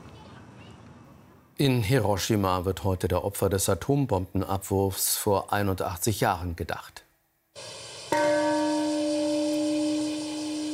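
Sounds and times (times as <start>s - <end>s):
speech: 1.6s - 7.0s
peace bell ringing at the Hiroshima atomic bombing memorial ceremony: 8.1s - 10.7s.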